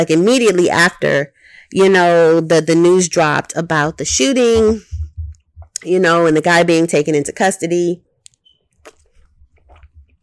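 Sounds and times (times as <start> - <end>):
speech: 0.0 - 5.0, 5.8 - 8.1
person sipping a drink with wet slurps and swallows: 8.8 - 10.2.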